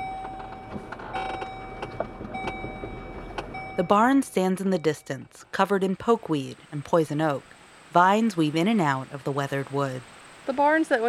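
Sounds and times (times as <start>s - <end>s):
truck engine droning and whining while driving, heard inside the cab: 0.0s - 10.7s
speech: 3.8s - 11.0s.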